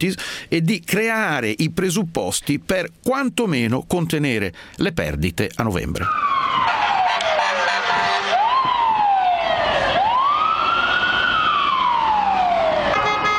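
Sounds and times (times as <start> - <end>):
speech: 0.0 - 6.8
street traffic on Fifth Avenue in Manhattan: 5.5 - 13.3
siren wailing on Fifth Avenue in Manhattan: 6.0 - 13.3.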